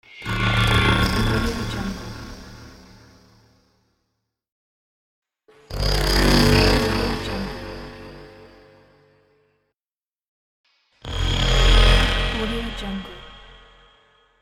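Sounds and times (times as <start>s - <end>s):
horror braam: 0.0s - 3.3s, 5.7s - 8.8s, 11.0s - 14.2s.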